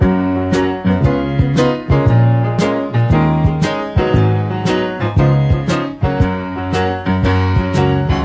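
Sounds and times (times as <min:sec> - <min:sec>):
sampled melodic piano music loop: 0:00.0 - 0:08.2.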